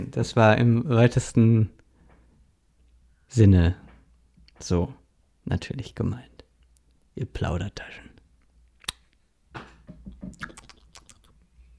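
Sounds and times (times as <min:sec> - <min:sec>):
speech: 0:00.0 - 0:01.8, 0:03.3 - 0:03.8, 0:04.6 - 0:06.3, 0:07.2 - 0:08.1
kiss lip smack blown into the microphone: 0:08.8 - 0:09.0
wet mouth clicks and smacking noises: 0:08.8 - 0:09.2, 0:10.3 - 0:11.4.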